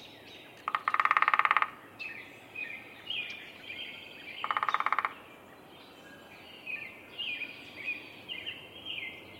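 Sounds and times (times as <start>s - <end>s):
Downy woodpecker drumming at a bird sanctuary in Minnesota: 0.6s - 1.8s, 4.4s - 5.2s
birds chirping and whistling: 2.0s - 9.3s.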